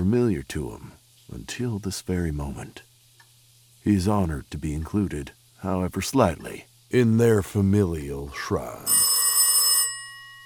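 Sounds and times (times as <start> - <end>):
speech: 0.0 - 2.9, 3.8 - 9.1
landline telephone mechanical bell ringing in a kitchen: 8.4 - 10.4.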